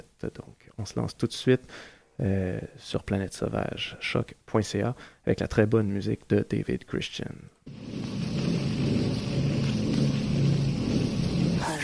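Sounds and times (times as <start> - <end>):
speech: 0.2 - 8.1
heavy rain pouring: 7.7 - 11.8.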